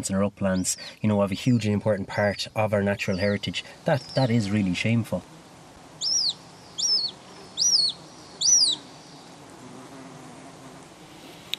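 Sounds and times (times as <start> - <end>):
hen harrier calling with rising-then-falling whistles: 0.0 - 1.2, 2.2 - 4.9, 6.0 - 9.4
speech: 0.0 - 5.4
faint outdoor noise: 0.0 - 11.5.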